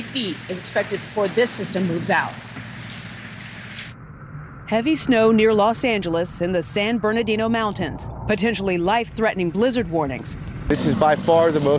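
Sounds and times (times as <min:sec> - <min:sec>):
torrential rain falling outdoors: 0:00.0 - 0:04.0, 0:10.7 - 0:11.7
speech: 0:00.2 - 0:02.5, 0:04.7 - 0:11.7.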